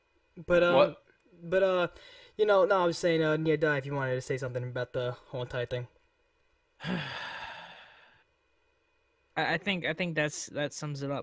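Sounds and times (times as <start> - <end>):
speech: 0.4 - 6.0, 6.8 - 7.2, 9.4 - 11.2
sudden gasp: 6.8 - 8.2.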